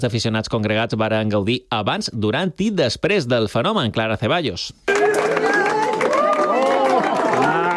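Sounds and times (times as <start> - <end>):
speech: 0.0 - 4.9
large outdoor crowd applauding at total solar eclipse: 4.9 - 7.7.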